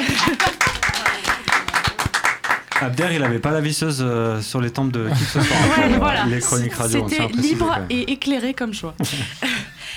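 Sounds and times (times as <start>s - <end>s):
laughter: 0.0s - 1.5s, 5.0s - 7.0s
small group clapping hands applauding: 0.0s - 3.6s
speech: 2.8s - 9.7s.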